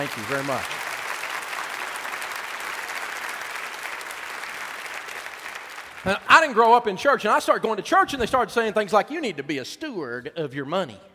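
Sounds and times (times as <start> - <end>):
speech: 0.0 - 0.8, 6.0 - 11.1
audience applause: 0.0 - 6.2.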